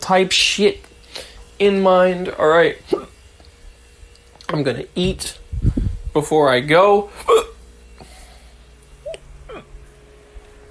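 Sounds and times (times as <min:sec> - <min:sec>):
speech: 0:00.1 - 0:02.9, 0:04.5 - 0:05.4, 0:06.1 - 0:07.4
person hiccuping: 0:07.2 - 0:07.6, 0:09.0 - 0:09.8.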